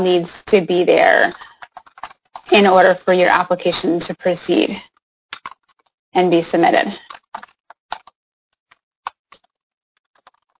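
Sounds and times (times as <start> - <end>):
speech: 0.0 - 1.5, 2.5 - 4.9, 6.1 - 7.1
typing on a computer keyboard: 1.3 - 2.5, 5.4 - 5.8, 7.0 - 8.2, 10.1 - 10.5.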